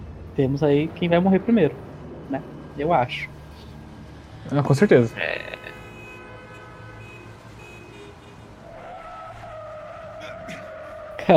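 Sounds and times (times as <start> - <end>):
speech: 0.4 - 3.3, 4.5 - 5.5
tires skidding and squealing: 2.4 - 11.3.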